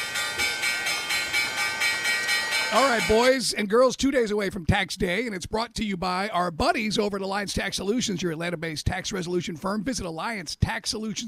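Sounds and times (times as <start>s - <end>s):
stock market closing bell ringing: 0.0s - 3.5s
speech: 2.7s - 11.2s.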